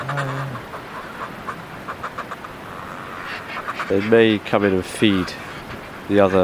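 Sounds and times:
low droning fulmar call: 0.0 - 3.6
fulmars' guttural chattering calls at nests: 0.0 - 6.4
steady hiss: 0.0 - 6.4
speech: 3.9 - 5.4, 6.1 - 6.4.

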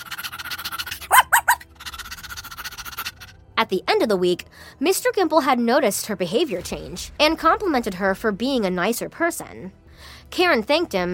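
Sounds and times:
soft steady rhythmic background: 0.0 - 11.1
Cocker Spaniel barking: 0.8 - 1.7
speech: 3.6 - 9.8, 10.4 - 11.1.

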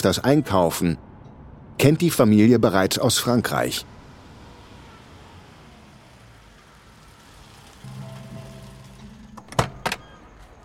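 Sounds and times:
speech: 0.0 - 1.1, 1.8 - 4.0
car engine humming while pulling into a parking lot: 0.0 - 10.6
car door opening and shutting: 9.4 - 10.2.

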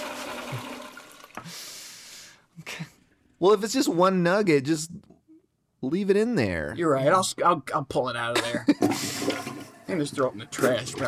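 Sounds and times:
toilet flushing: 0.0 - 1.5, 8.8 - 11.0
speech: 3.4 - 5.0, 5.8 - 11.0.

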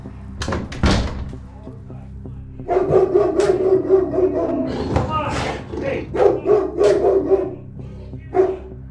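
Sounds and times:
big dog barking: 2.7 - 8.8.

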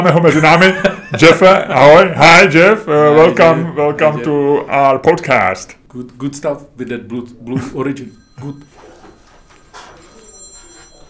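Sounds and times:
laughter: 0.0 - 2.2
speech: 0.0 - 8.8
mobile phone electronic ringtone for a call from an unknown number: 8.0 - 11.0.

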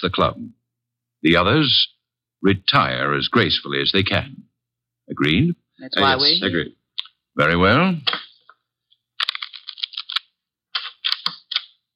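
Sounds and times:
speech: 0.0 - 0.6, 1.2 - 4.5, 5.1 - 6.8, 7.4 - 8.2
deck of playing cards being riffle shuffled: 9.2 - 11.8.

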